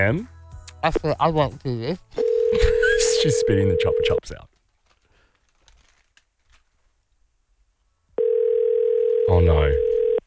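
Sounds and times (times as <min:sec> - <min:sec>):
speech: 0:00.0 - 0:04.5, 0:09.3 - 0:09.9
outgoing phone call ringing tone: 0:02.2 - 0:04.2, 0:08.2 - 0:10.2.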